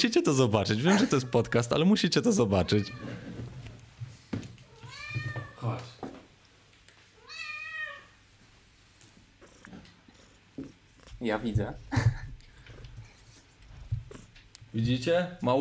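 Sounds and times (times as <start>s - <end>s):
speech: 0.0s - 3.3s, 5.6s - 6.0s, 11.2s - 12.1s, 14.8s - 15.6s
pet cat meowing at home: 2.5s - 3.4s, 4.7s - 5.8s, 7.2s - 8.2s.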